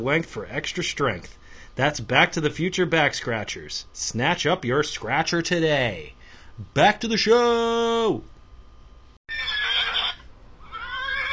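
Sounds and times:
speech: 0:00.0 - 0:08.3
horse neighing in a stable: 0:09.3 - 0:11.3.

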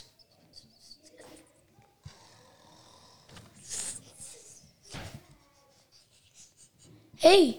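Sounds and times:
heavy rasping snoring: 0:02.0 - 0:04.0
speech: 0:07.2 - 0:07.5.

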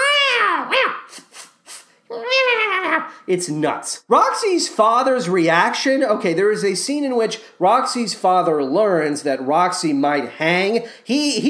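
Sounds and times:
cats howling in a fight: 0:00.0 - 0:01.1, 0:02.1 - 0:03.2
cat hissing in a fight: 0:00.0 - 0:03.3
speech: 0:03.3 - 0:11.4.

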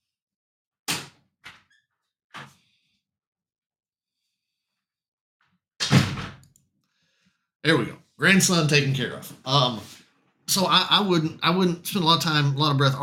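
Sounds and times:
door thudding shut with a brief rattle: 0:05.8 - 0:06.4
speech: 0:07.6 - 0:13.0.

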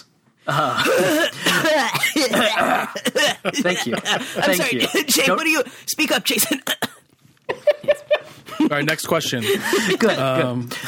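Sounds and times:
speech: 0:00.5 - 0:01.1, 0:02.4 - 0:06.8, 0:08.7 - 0:10.8
person coughing in a classroom: 0:00.5 - 0:03.4, 0:04.4 - 0:05.4
laughter: 0:03.2 - 0:05.3, 0:07.5 - 0:10.8.

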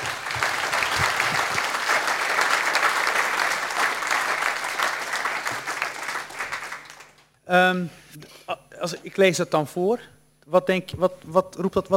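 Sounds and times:
large audience applauding warmly: 0:00.0 - 0:07.2
speech: 0:07.5 - 0:11.9.

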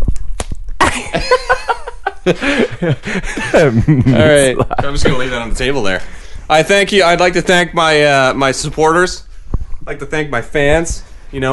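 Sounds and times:
slaps on a person's skin: 0:00.1 - 0:00.7
people laughing and chuckling: 0:00.8 - 0:05.8
speech: 0:01.0 - 0:11.5.

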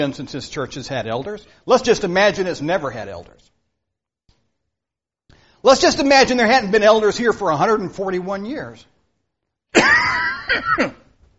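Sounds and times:
speech: 0:00.0 - 0:03.5, 0:05.6 - 0:08.9, 0:09.7 - 0:11.0
coughing and throat clearing: 0:09.7 - 0:11.2.

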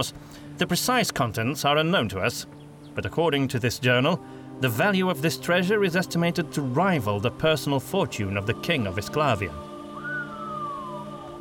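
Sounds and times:
speech: 0:00.0 - 0:09.7
person's impressed whistle gliding downward in pitch: 0:09.9 - 0:11.3.

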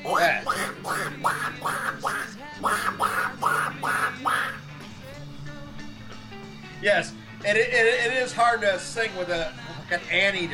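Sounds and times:
voice imitating a cartoon duck quacking: 0:00.0 - 0:04.8
speech: 0:06.9 - 0:10.5.

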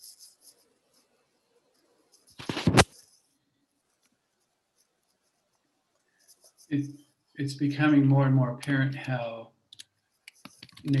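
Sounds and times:
speech: 0:06.7 - 0:09.5
typing on a keyboard: 0:09.0 - 0:10.9.

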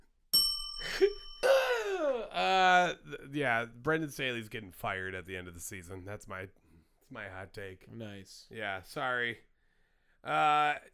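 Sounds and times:
bell struck once and ringing: 0:00.4 - 0:02.4
speech: 0:02.9 - 0:09.5, 0:10.2 - 0:10.9.

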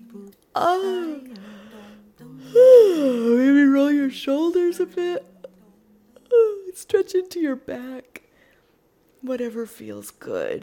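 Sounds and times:
speech: 0:00.6 - 0:01.4, 0:04.0 - 0:05.3, 0:06.8 - 0:08.2, 0:09.2 - 0:10.6
person yawning during a stretch: 0:00.6 - 0:01.6, 0:02.4 - 0:03.5.

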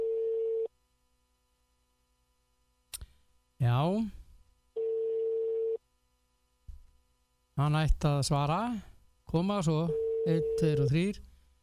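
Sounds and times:
speech: 0:03.7 - 0:04.2, 0:07.6 - 0:11.3
telephone ringing tone on an outgoing call: 0:04.8 - 0:05.8, 0:09.9 - 0:10.6.

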